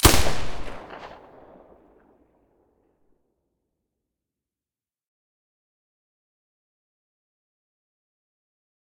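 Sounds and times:
silenced Galil firing: 0:00.0 - 0:01.8.

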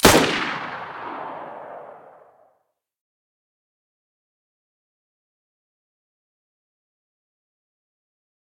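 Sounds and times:
Mosin rifle gunshot at the muzzle: 0:00.0 - 0:02.3.

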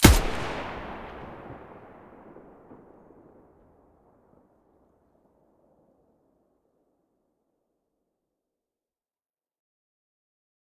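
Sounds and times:
MDR rifle muzzle report in mono: 0:00.0 - 0:03.4.

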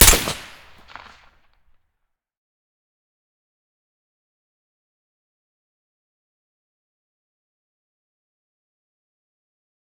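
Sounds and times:
SVD rifle firing with silencer: 0:00.0 - 0:01.2.

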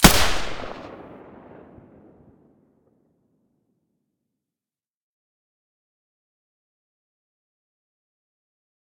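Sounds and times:
suppressed rifle gunshot: 0:00.0 - 0:01.7.

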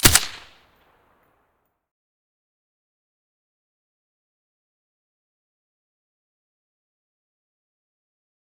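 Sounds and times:
silenced rifle gunshot: 0:00.0 - 0:00.6.

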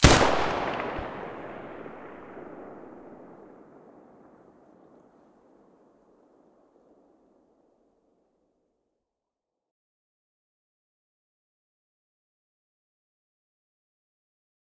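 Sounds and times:
MP9 submachine gun muzzle shots: 0:00.0 - 0:03.5.

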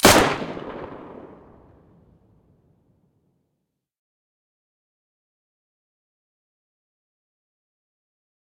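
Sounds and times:
Mosin rifle muzzle blast: 0:00.0 - 0:01.7.

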